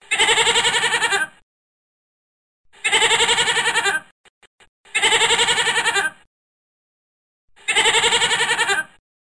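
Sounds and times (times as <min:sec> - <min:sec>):
domestic goat bleating: 0:00.1 - 0:01.3, 0:02.8 - 0:04.1, 0:05.0 - 0:06.2, 0:07.6 - 0:09.0.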